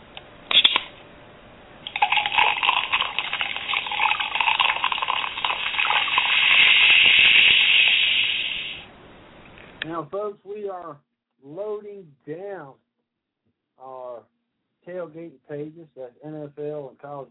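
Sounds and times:
sharp clicks: 0.1 - 0.9
drink pouring into a glass: 1.9 - 8.8
speech: 10.0 - 12.8, 13.8 - 17.3.

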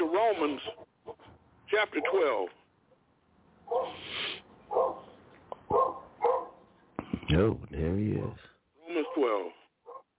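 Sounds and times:
speech: 0.3 - 0.9, 1.7 - 2.6, 3.7 - 5.0, 7.3 - 8.4
dog barking: 3.6 - 4.0, 4.7 - 6.6, 8.9 - 10.1.

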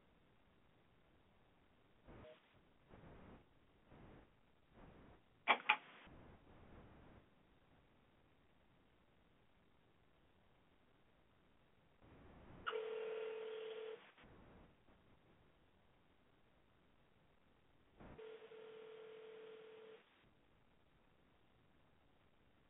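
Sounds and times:
telephone dialing tones on a call-in line: 12.7 - 14.0, 18.2 - 20.0.

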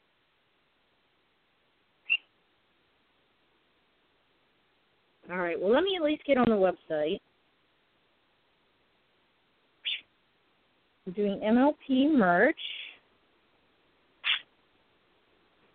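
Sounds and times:
small pet bird chirping: 2.0 - 2.4, 9.8 - 10.1, 14.2 - 14.5
speech: 5.3 - 7.3, 11.1 - 12.8.

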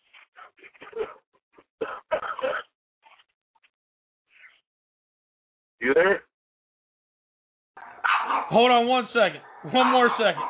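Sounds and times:
speech: 5.8 - 6.2, 8.5 - 10.4
dog barking and whining: 7.8 - 8.6, 9.4 - 10.4.

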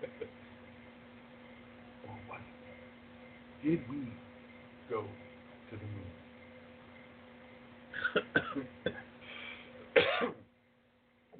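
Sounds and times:
faint steady hum: 0.0 - 11.3
speech: 3.6 - 4.3, 4.9 - 6.2, 8.1 - 9.0
person clearing throat: 8.0 - 9.1, 10.0 - 10.4
person coughing: 8.0 - 9.1, 10.0 - 10.4.

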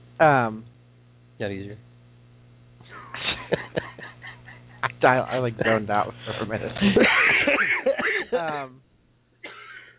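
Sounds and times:
speech: 0.2 - 0.7, 1.4 - 1.9, 4.8 - 7.6, 8.3 - 8.9
laughter: 2.9 - 8.8
person coughing: 6.8 - 8.7, 9.4 - 9.9
person clearing throat: 9.4 - 9.9.

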